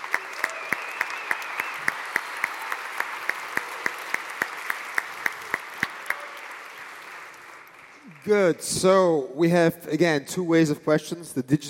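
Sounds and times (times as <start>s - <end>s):
audience applause: 0.0s - 8.7s
speech: 8.2s - 11.6s.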